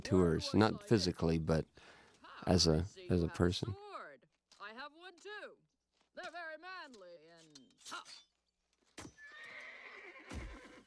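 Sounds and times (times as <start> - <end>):
speech: 0.0 - 3.8, 6.2 - 8.3
horse neighing: 9.2 - 10.8.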